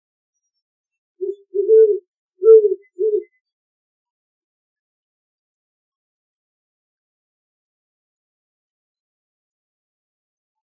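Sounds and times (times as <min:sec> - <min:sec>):
Great horned owl hooting: 0:01.2 - 0:03.3.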